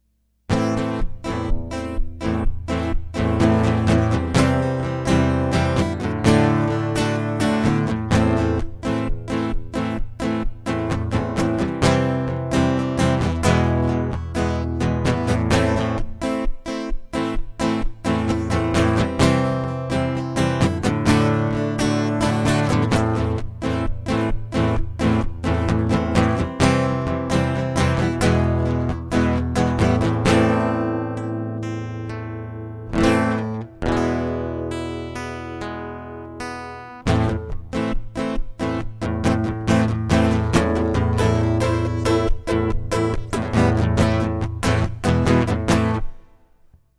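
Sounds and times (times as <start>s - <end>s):
acoustic instrument: 0.5s - 46.7s.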